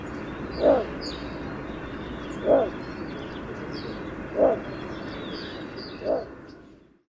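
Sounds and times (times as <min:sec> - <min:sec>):
faint high bird calls: 0:00.0 - 0:06.7
steady background hiss: 0:00.0 - 0:07.0
little bittern calling with a deep short barking note: 0:00.5 - 0:01.0, 0:02.4 - 0:02.8, 0:04.3 - 0:04.7, 0:06.0 - 0:06.4.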